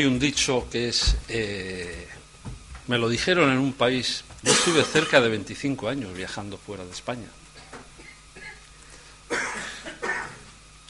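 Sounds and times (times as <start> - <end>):
speech: 0.0 - 2.2, 2.9 - 7.4
harsh coughs: 4.4 - 5.2, 8.0 - 8.6, 9.3 - 10.6.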